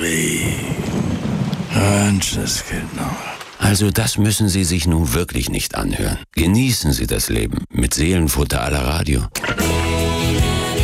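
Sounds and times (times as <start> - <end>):
steady rain falling: 0.0 - 3.9
speech: 1.9 - 9.8.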